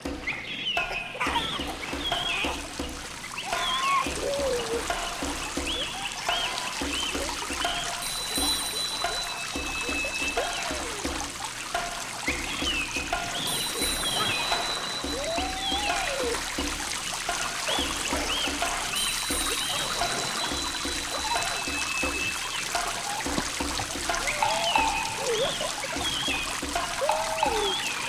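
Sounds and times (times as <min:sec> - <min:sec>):
rain in a rain forest: 0:00.0 - 0:28.0
children's voices in a rain forest: 0:00.8 - 0:02.7, 0:03.4 - 0:07.4, 0:13.4 - 0:16.6, 0:19.6 - 0:23.4, 0:24.1 - 0:28.0
rain forest river flowing: 0:01.6 - 0:28.0.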